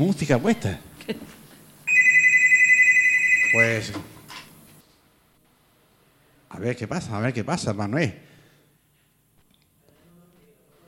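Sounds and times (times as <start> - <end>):
speech: 0.0 - 1.2, 3.5 - 4.1, 6.5 - 8.3
telephone ringing with a warbling electronic tone: 1.9 - 3.9.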